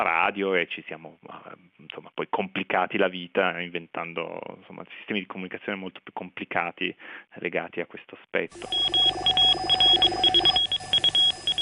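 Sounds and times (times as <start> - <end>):
speech: 0.0 - 9.8
short high electronic Morse code beeps: 8.6 - 11.6.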